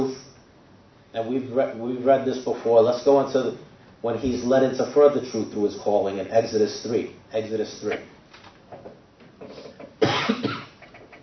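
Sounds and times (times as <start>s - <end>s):
speech: 1.2s - 9.0s
harsh cough: 9.4s - 11.0s.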